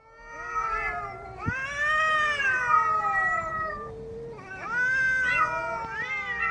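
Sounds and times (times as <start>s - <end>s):
cats caterwauling: 0.0s - 6.5s.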